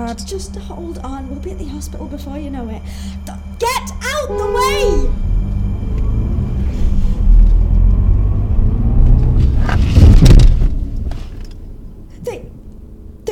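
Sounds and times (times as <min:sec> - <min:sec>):
car engine rumble: 0:00.0 - 0:13.3
speech: 0:00.1 - 0:05.3
car crashing through a fence off the road: 0:09.3 - 0:11.4.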